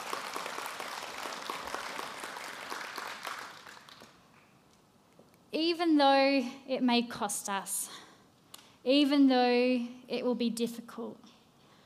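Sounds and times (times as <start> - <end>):
audience applauding a speaker: 0.0 - 4.2
speech: 5.6 - 8.0, 8.8 - 11.4.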